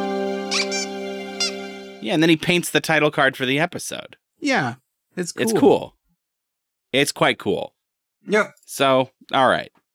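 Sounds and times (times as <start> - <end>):
sustained musical tone: 0.0 - 2.3
rubber squeaky toy squeaking: 0.5 - 1.6
speech: 2.0 - 6.0, 6.9 - 9.8.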